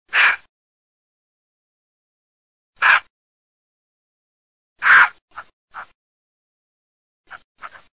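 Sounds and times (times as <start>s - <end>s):
roe deer: 0.1s - 0.5s, 2.8s - 3.1s, 4.8s - 6.0s.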